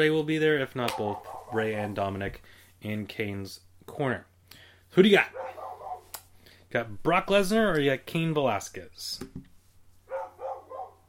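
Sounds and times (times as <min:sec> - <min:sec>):
speech: 0:00.0 - 0:04.3, 0:04.9 - 0:05.6, 0:06.7 - 0:09.5
dog barking: 0:00.9 - 0:01.9, 0:05.3 - 0:06.1, 0:10.1 - 0:11.0.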